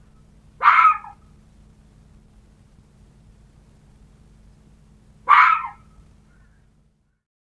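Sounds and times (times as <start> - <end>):
quiet low hum: 0.0 - 7.2
red fox giving rough scratchy barks: 0.6 - 1.3, 5.2 - 6.0.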